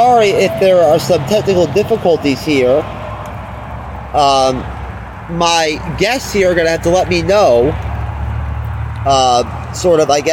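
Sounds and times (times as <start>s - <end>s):
speech: 0.0s - 3.0s, 4.1s - 7.9s, 9.0s - 10.3s
loud buzzy tonal blare: 0.0s - 3.2s
steady low rumble of road traffic: 0.0s - 10.3s.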